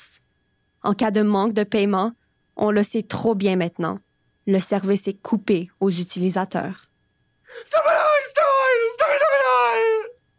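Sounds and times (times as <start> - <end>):
speech: 0.8 - 6.9, 7.5 - 8.0
man shouting in an unintelligible language: 7.5 - 10.2.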